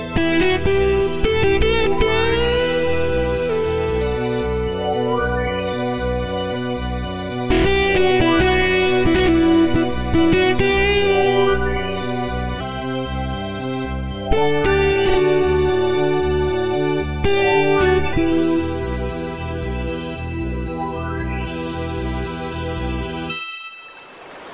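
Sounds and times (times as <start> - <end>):
disco blues music on a keyboard arranger: 0.1 - 23.3.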